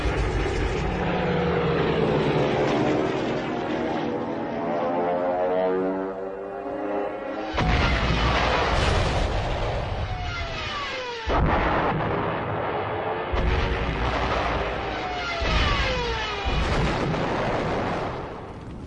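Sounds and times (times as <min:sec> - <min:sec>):
Stuka dive bomber propeller-engine roar attacking tanks: 0:00.0 - 0:18.6.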